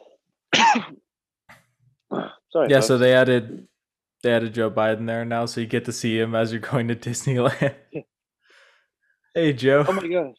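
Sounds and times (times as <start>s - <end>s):
single harsh cough clearing the throat: 0.6s - 1.0s
speech: 2.5s - 8.1s, 9.3s - 10.3s.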